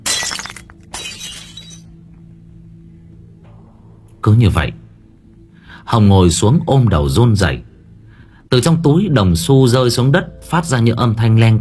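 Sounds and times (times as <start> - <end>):
mirror smashed and its glass shattering: 0.0 - 1.9
speech: 4.2 - 4.8, 5.9 - 7.7, 8.5 - 11.5.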